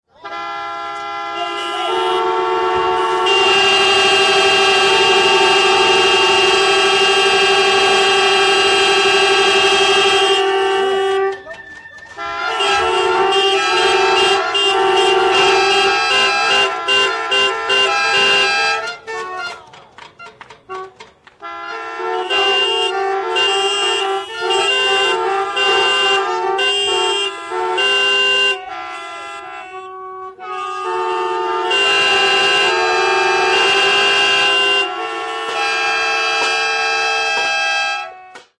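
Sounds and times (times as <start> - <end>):
car horns: 0.0 - 38.5.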